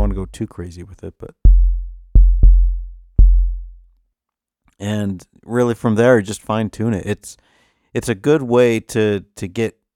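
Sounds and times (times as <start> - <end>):
punchy distorted synthesized kick drum hits: 0.0 - 0.4, 1.4 - 3.8
speech: 0.2 - 1.5, 4.8 - 9.8.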